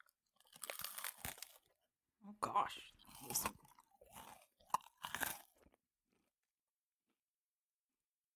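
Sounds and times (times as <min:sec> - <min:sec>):
person biting and chewing a crunchy cereal bar: 0:00.0 - 0:01.8, 0:03.0 - 0:05.8
speech: 0:02.2 - 0:03.6.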